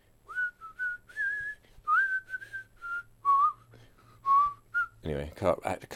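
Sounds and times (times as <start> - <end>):
whistled tune from a TV advert: 0.3 - 5.0
speech: 5.1 - 5.9.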